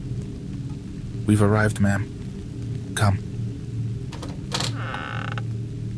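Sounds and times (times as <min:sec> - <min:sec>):
speech: 0:01.3 - 0:02.2, 0:03.0 - 0:03.3
wooden door of a small house creaking open: 0:04.1 - 0:05.5
wooden door rattling scrape: 0:04.2 - 0:05.4.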